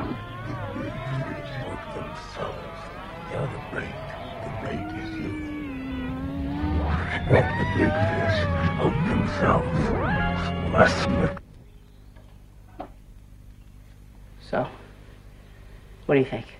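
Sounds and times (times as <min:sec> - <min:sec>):
garbled backwards-talking vocal-like sounds: 0:00.0 - 0:11.4
screeching wailing guitar lines in loud harsh music: 0:00.0 - 0:11.4
speech: 0:03.3 - 0:05.4, 0:07.3 - 0:11.4, 0:14.5 - 0:14.8, 0:16.1 - 0:16.5.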